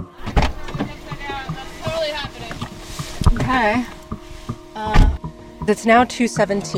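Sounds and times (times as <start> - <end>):
shuffling and clicks of movement in a car: 0.0 - 4.7
heavy thud of getting into a car: 0.2 - 5.2
speech: 3.4 - 4.0, 4.8 - 5.1, 5.7 - 6.7.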